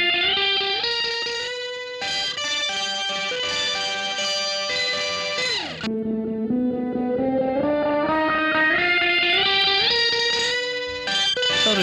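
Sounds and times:
loud saturated electric guitar with heavy reverb: 0.0s - 11.8s.

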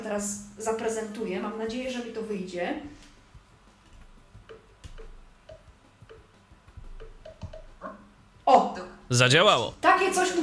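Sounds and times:
speech: 0.0s - 3.1s, 8.5s - 10.4s
short clicks and taps from a handheld device: 3.1s - 7.8s.

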